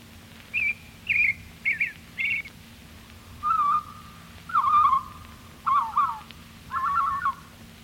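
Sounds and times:
faint steady hum: 0.0s - 7.8s
robin singing whistled phrases: 0.5s - 2.5s, 3.4s - 7.4s.

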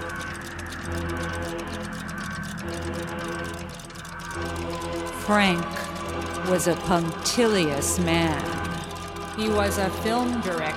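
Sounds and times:
watch ticking: 0.0s - 10.7s
speech: 0.9s - 3.8s, 4.4s - 8.7s, 9.4s - 10.7s.

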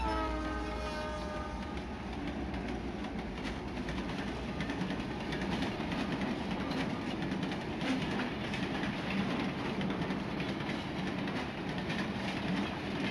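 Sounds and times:
horn-like tone: 0.0s - 2.0s
train rolling along rails: 0.0s - 13.0s.

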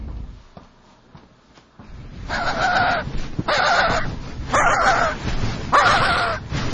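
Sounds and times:
skuas giving harsh nasal calls near their nest at Cape Royds in Antarctica: 2.3s - 6.5s.

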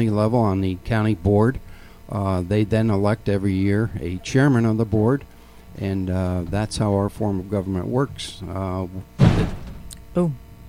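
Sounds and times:
speech: 0.0s - 9.6s, 10.2s - 10.4s
door with a worn spring slamming shut: 9.2s - 9.9s.

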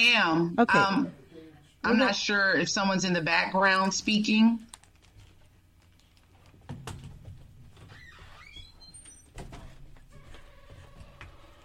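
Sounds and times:
speech: 0.0s - 1.2s, 1.8s - 4.7s
faint hum: 0.0s - 11.6s
door squeaking on its hinges: 7.7s - 11.6s.

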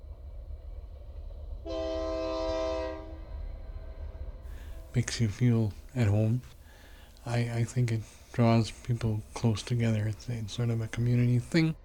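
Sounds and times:
steady low rumble of rail noise: 0.0s - 11.8s
distant sustained chord-like train horn blast: 1.6s - 3.6s
speech: 5.0s - 6.6s, 7.2s - 11.8s.

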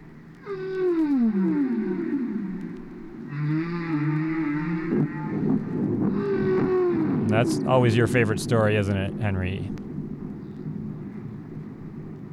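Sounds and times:
whale vocalization with moaning calls: 0.4s - 9.6s
speech: 7.4s - 9.8s.

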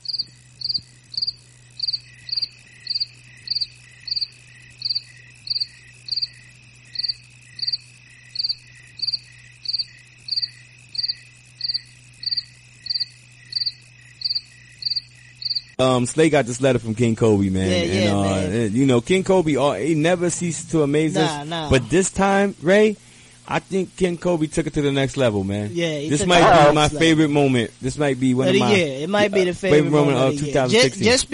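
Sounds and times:
crickets chirping: 0.0s - 31.3s
faint low hum: 0.0s - 31.3s
speech: 15.8s - 31.3s.

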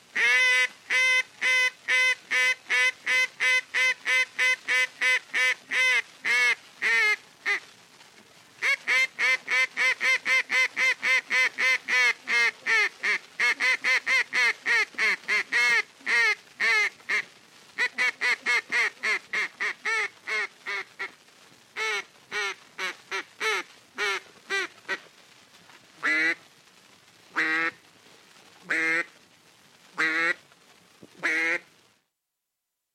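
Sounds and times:
duck call quacks in flooded timber at Stuttgart Arkansas: 0.2s - 7.6s, 8.6s - 21.1s, 21.8s - 25.0s, 26.0s - 26.4s, 27.4s - 27.8s, 28.7s - 29.1s, 30.0s - 30.4s, 31.2s - 31.7s.

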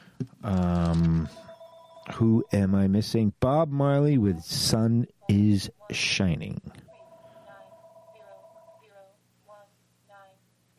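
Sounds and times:
speech: 0.4s - 1.5s, 2.2s - 6.8s
telephone ringing: 1.3s - 2.5s, 6.9s - 9.0s.

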